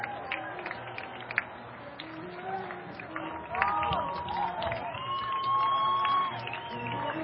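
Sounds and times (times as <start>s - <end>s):
large ballpark crowd roaring and cheering a home run: 0.0s - 7.2s
scattered whoops and shouts from ballpark crowd: 2.5s - 7.2s.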